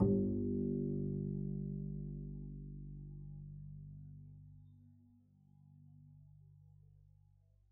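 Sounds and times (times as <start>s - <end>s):
pizzicato double bass playing G1: 0.0s - 2.2s.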